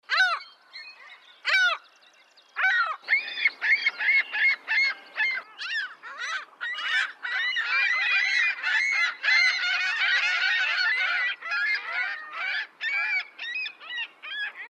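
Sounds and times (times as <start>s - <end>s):
ring-billed gull calling: 2.6s - 14.6s.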